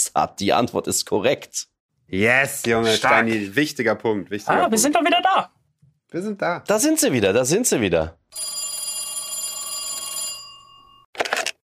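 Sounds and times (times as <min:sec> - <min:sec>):
speech: 0:00.2 - 0:08.6
telephone ringing for an incoming call during a quiz game: 0:08.3 - 0:11.1.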